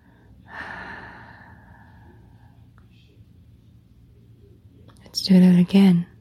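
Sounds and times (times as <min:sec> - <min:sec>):
soft drawn-out breathing in through the nose and out through the mouth in a guided relaxation exercise: 0:00.0 - 0:02.6
steady low hum: 0:00.0 - 0:06.1
speech: 0:05.2 - 0:06.1.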